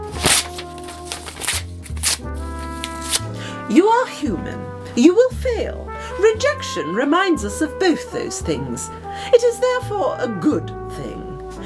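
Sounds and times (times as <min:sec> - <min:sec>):
paper story manuscript being ripped up: 0:00.0 - 0:03.3
speech: 0:03.7 - 0:10.8.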